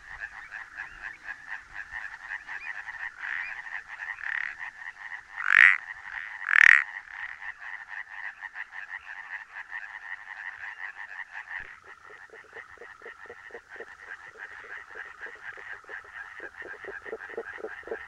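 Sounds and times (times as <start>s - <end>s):
chorus of frogs trilling and croaking: 0.0s - 18.0s
western spadefoot toad faint underwater call: 0.1s - 18.0s
Iberian painted frog double-note call, half its body below the water surface: 11.6s - 18.0s.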